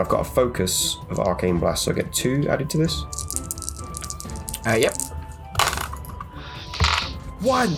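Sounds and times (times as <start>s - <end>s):
speech: 0.0s - 3.3s, 4.6s - 5.1s, 7.4s - 7.7s
dice rolled for an attack in a tabletop game clattering across a hard tabletop: 3.1s - 6.0s.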